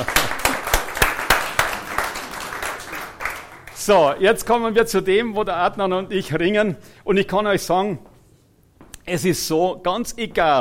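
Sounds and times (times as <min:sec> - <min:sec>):
speech: 0:00.0 - 0:00.3, 0:03.9 - 0:08.1, 0:09.1 - 0:10.5
crowd applauding: 0:00.0 - 0:04.2.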